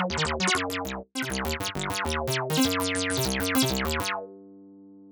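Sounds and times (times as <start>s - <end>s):
acid synth sequence: 0.2s - 4.2s.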